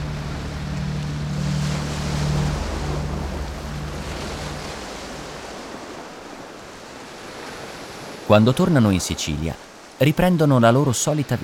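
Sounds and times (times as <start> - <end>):
low droning hum: 0.0 - 6.8
sea waves crashing on rocks: 0.0 - 11.4
speech: 8.3 - 11.4.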